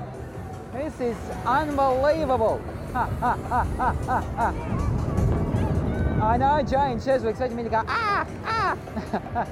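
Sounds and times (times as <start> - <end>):
speech: 0.7 - 5.0, 6.2 - 9.4
laughter: 2.8 - 5.0, 7.9 - 9.4
person squawking in imitation of a seagull: 7.9 - 8.8.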